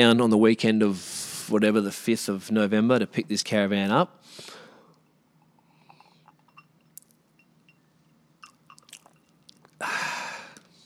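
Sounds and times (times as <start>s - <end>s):
speech: 0.0s - 4.6s
small swallowing sounds: 8.4s - 9.8s
wet mouth clicks: 8.4s - 9.8s.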